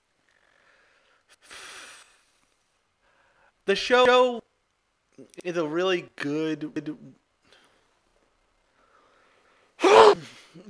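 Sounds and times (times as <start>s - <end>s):
speech: 3.7s - 4.4s, 5.2s - 7.2s
sharp breathy sneeze off-mic: 9.8s - 10.6s.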